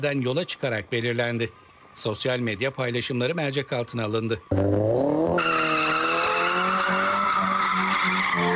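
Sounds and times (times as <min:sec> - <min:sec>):
speech: 0:00.0 - 0:05.6
car tires screeching while drifting: 0:04.4 - 0:08.5.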